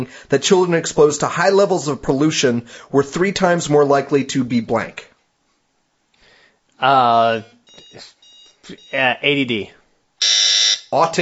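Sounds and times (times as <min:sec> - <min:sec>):
speech: 0:00.0 - 0:05.1, 0:06.8 - 0:09.8, 0:10.9 - 0:11.1
quiz timer alarm harsh electronic buzz: 0:10.2 - 0:10.9.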